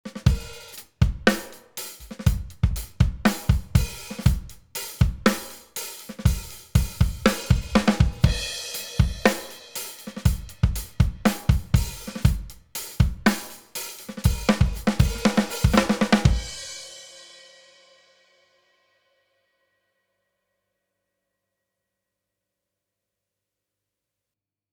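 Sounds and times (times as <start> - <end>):
compressed drums: 0.1 - 16.7.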